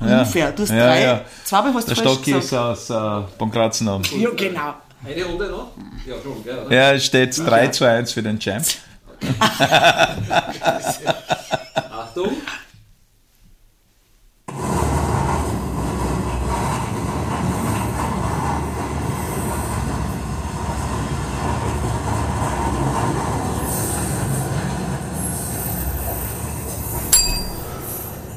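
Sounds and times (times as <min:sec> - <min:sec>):
speech: 0:00.1 - 0:11.3
laughter: 0:09.2 - 0:12.6
freight train wagons and wheels rumbling past: 0:14.5 - 0:28.3.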